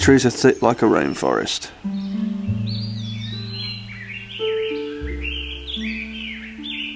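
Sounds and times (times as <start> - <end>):
speech: 0.0 - 2.0
toucans calling in thick rainforest-like woodland around a train station: 0.0 - 6.9.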